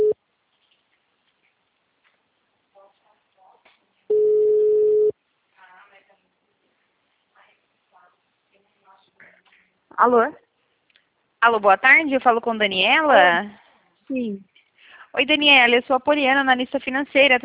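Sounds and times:
telephone line tone while placing an outgoing work call: 4.1 - 5.1
speech: 10.0 - 10.4, 11.4 - 14.5, 15.1 - 17.4.

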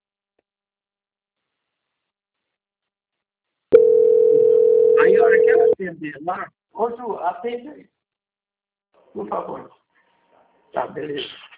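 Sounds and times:
telephone line tone while transferring a call: 3.8 - 5.8
speech: 5.1 - 8.0, 9.1 - 9.8, 10.7 - 11.4.

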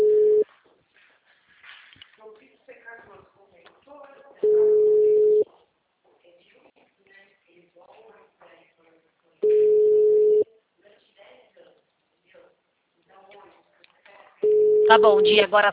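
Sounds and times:
telephone call tones as a call is placed: 0.0 - 0.4, 4.4 - 5.4, 9.4 - 10.5, 14.4 - 15.5
quiet talk: 2.1 - 9.6, 10.4 - 14.6
speech: 14.9 - 15.7.

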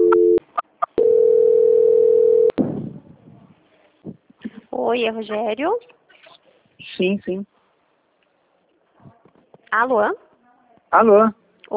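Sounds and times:
two-tone telephone beep during a call transfer: 0.0 - 0.4, 1.0 - 2.5
brief telephone blips during a call transfer: 0.0 - 2.6
faint noise: 0.0 - 11.7
speech: 4.9 - 6.0, 6.9 - 7.5, 9.7 - 10.2, 10.9 - 11.4.

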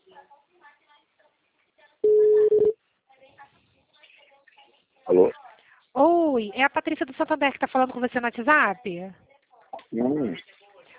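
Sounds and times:
telephone ringing tone while placing an outgoing call: 2.0 - 2.8
person talking quietly: 5.1 - 5.4, 9.8 - 10.5
speech: 6.4 - 9.3, 9.9 - 10.6.

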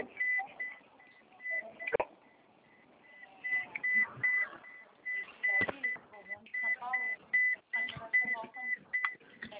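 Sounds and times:
car seatbelt warning beeps: 0.0 - 9.2.

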